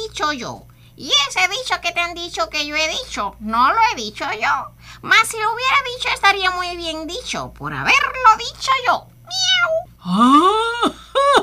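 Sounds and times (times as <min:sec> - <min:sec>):
speech: 0:00.2 - 0:11.0
cat meowing: 0:09.3 - 0:09.9.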